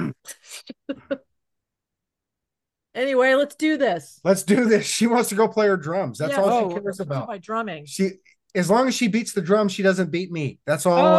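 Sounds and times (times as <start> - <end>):
person clearing throat: 0.0 - 0.4
person coughing: 0.0 - 1.1
speech: 3.0 - 11.1.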